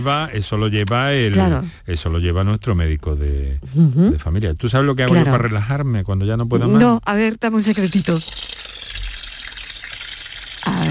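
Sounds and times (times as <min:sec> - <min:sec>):
speech: 0:00.0 - 0:08.5
fountain water splashing played from a mobile phone: 0:08.0 - 0:10.9.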